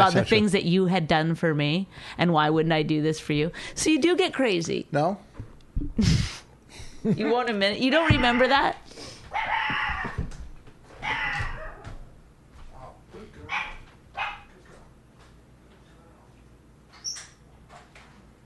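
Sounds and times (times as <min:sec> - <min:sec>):
speech: 0:00.0 - 0:06.4, 0:07.0 - 0:09.8
dog barking: 0:11.0 - 0:11.8, 0:13.5 - 0:14.5.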